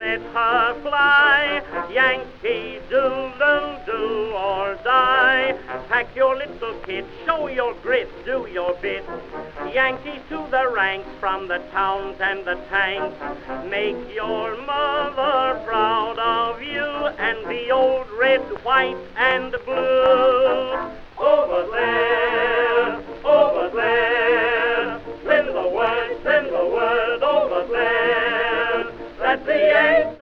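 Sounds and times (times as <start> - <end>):
baritone singing: 0.0 - 30.1.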